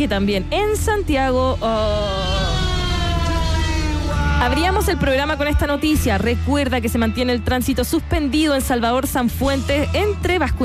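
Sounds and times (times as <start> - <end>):
speech: 0.0 - 2.4, 4.4 - 10.6
ambulance siren passing on a road: 1.8 - 6.0.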